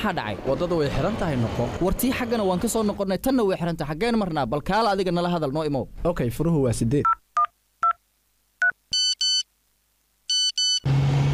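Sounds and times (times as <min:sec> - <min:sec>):
speech: 0:00.0 - 0:07.2
mobile phone ringing: 0:08.6 - 0:09.5, 0:10.3 - 0:10.9.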